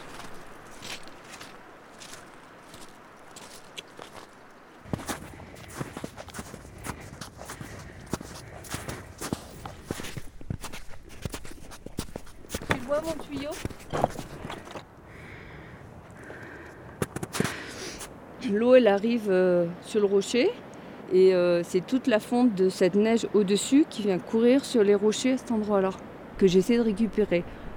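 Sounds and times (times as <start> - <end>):
footsteps crunching along a mountain path toward a glacier: 0.0 - 14.9
speech: 18.6 - 27.6.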